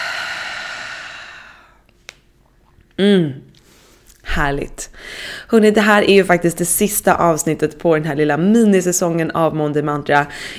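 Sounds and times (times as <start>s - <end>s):
slow exhale through the mouth after a deep breath during guided relaxation: 0.0s - 1.8s
speech: 3.0s - 3.4s, 4.4s - 10.5s.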